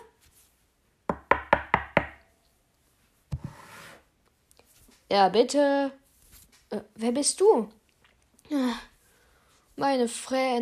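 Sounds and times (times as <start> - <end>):
sharp knocks on a wooden door: 1.1 - 2.2
brief rustling scrape: 2.9 - 5.1, 6.0 - 6.7
speech: 5.1 - 6.0, 6.7 - 7.8, 8.5 - 8.9, 9.8 - 10.5.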